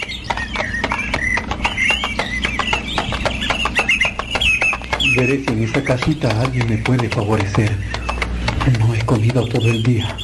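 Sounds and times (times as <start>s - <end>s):
tired horse hooves clip-clopping as it walks away: 0.0s - 10.2s
speech: 5.2s - 8.0s, 8.7s - 10.2s.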